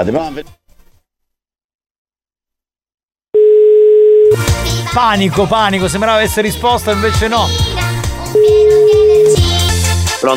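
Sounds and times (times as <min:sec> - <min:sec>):
speech: 0:00.0 - 0:00.6, 0:04.4 - 0:07.7, 0:08.3 - 0:09.6, 0:10.2 - 0:10.3
telephone ringing tone during a call: 0:03.4 - 0:04.4, 0:08.4 - 0:09.5.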